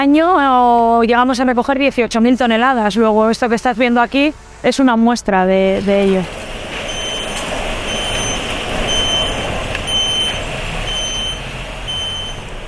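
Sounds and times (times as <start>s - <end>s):
speech: 0.0s - 6.5s
large clothing collection truck engine idling: 5.8s - 12.6s
truck reversing alarm beeping: 6.0s - 12.6s.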